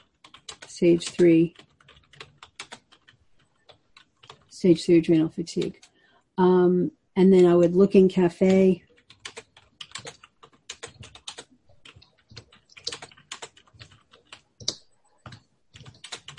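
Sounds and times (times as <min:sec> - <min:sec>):
typing on a computer keyboard: 0:00.0 - 0:04.6, 0:08.4 - 0:16.3
speech: 0:00.8 - 0:01.7, 0:04.6 - 0:05.8, 0:06.4 - 0:08.8.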